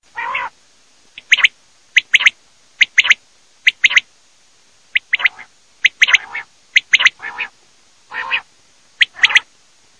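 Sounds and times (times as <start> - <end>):
common quail calling: 0.1 - 0.6, 1.2 - 4.1, 5.0 - 9.5.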